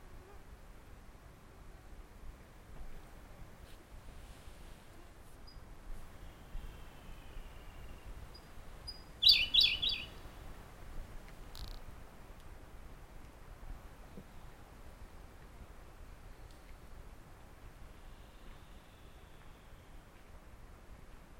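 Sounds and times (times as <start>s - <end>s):
background hiss: 0.0s - 21.3s
Siberian blue robin Larvivora cyane song: 6.6s - 10.2s.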